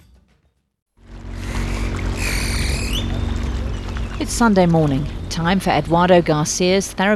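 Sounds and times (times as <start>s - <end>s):
thin high whine: 1.0s - 6.7s
boat engine low drone: 1.0s - 7.1s
water rushing and splashing around a boat: 1.0s - 7.1s
speech: 4.2s - 7.1s.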